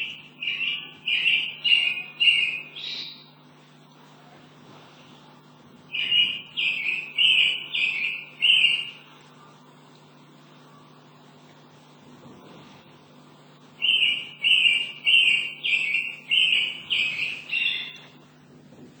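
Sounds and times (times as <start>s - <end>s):
mockingbird singing: 0.0s - 3.5s, 5.9s - 9.2s, 13.8s - 18.2s
faint low hum: 0.0s - 18.9s.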